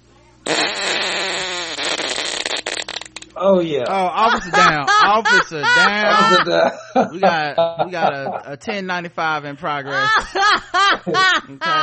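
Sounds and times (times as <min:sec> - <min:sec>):
loud drawn-out fart with wet sputtering bursts: 0:00.4 - 0:03.4
speech: 0:03.4 - 0:11.8
laughter: 0:03.9 - 0:08.6, 0:09.8 - 0:11.8.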